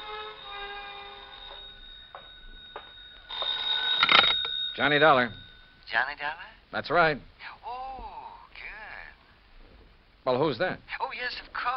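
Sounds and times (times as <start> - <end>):
telephone ringing with buzzing bell tone: 0.0 - 6.2
speech: 4.8 - 7.3, 10.3 - 11.7.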